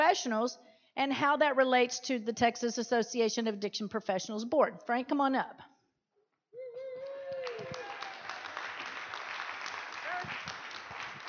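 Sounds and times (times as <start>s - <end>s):
speech: 0.0s - 5.7s
high whoop or cheer from audience: 6.6s - 8.8s
audience applause: 7.0s - 11.2s.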